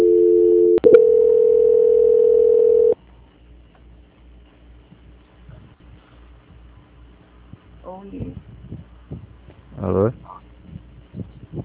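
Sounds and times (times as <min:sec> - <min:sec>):
telephone line tone during call transfer: 0:00.0 - 0:03.0.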